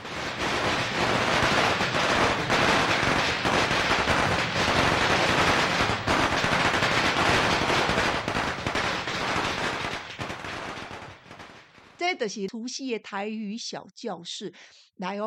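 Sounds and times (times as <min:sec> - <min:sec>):
long string of environmentally friendly firecrackers popping: 0:00.0 - 0:12.0
speech: 0:12.2 - 0:15.2.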